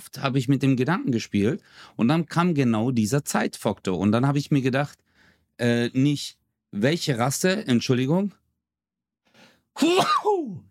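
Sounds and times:
speech: 0.2 - 5.0, 5.6 - 8.4, 9.8 - 10.6
person sneezing: 9.8 - 10.6.

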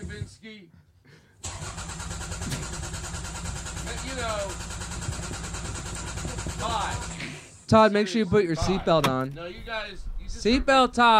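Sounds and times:
car engine cranking without catching: 1.4 - 7.6
speech: 7.7 - 11.1.

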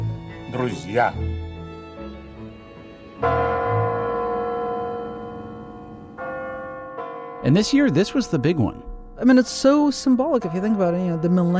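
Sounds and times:
speech: 0.5 - 1.3, 7.5 - 11.5
Kremlin tower clock bells striking midnight in front of Red Square: 3.2 - 11.5.

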